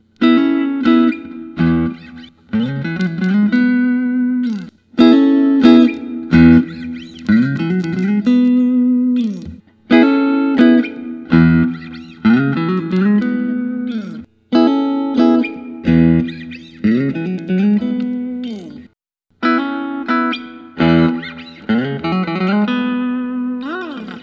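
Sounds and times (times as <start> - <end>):
guitar: 0.0 - 24.2.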